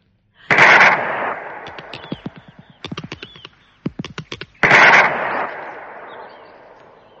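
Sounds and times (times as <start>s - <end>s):
gunshots fired at a creature in a garden: 0.5s - 2.8s, 4.6s - 7.1s
rapid string of smaller sharp cracks: 0.5s - 7.0s.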